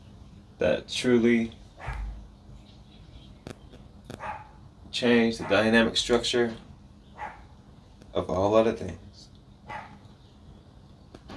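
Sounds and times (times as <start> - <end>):
speech: 0.6 - 1.6, 5.0 - 6.7, 8.2 - 9.0
dog barking: 1.8 - 2.2, 4.1 - 4.6, 5.3 - 5.9, 7.1 - 7.6, 9.6 - 10.1.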